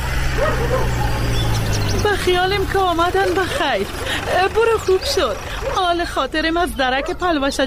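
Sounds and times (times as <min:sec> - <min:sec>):
dog barking with sharp yelps: 0:00.2 - 0:01.7, 0:04.8 - 0:06.0, 0:06.9 - 0:07.3
speech: 0:02.3 - 0:07.6.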